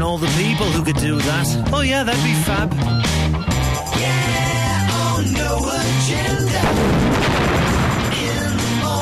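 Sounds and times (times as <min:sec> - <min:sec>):
speech: 0:00.2 - 0:04.6, 0:05.2 - 0:07.6
explosion sound effect with crackling rumble: 0:06.5 - 0:08.9.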